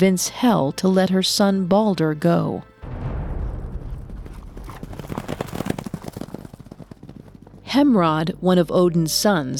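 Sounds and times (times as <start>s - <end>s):
speech: 0.0s - 2.7s, 7.8s - 9.5s
low rumbling: 2.8s - 5.8s
horse hooves clip-clopping: 3.7s - 7.8s.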